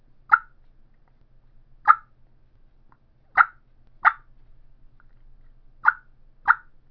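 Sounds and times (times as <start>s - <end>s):
eastern supreme mouth call clucks imitating a turkey: 0.0s - 0.6s, 1.8s - 2.2s, 3.3s - 4.3s, 5.8s - 6.8s.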